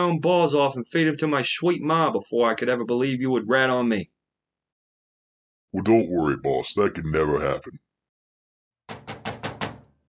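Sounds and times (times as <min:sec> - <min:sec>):
speech: 0:00.0 - 0:04.2, 0:05.7 - 0:07.8
knuckles knocking on a door: 0:08.9 - 0:10.0.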